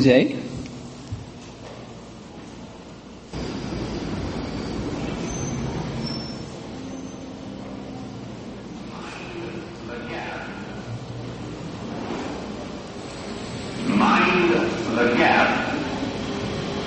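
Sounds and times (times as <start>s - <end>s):
speech: 0.0s - 0.4s
London Underground subway train rumbling at platform: 0.0s - 16.8s
faint metallic train wheel squeals and whines: 3.4s - 8.2s.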